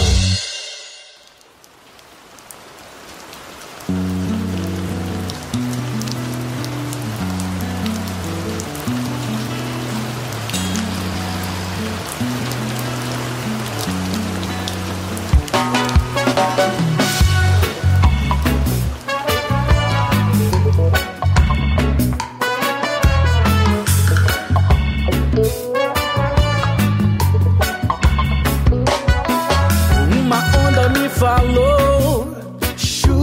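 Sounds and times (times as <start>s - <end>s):
rhythmic music track with a repeating bass line: 0.0s - 0.7s, 15.2s - 33.2s
rain falling: 0.0s - 33.2s.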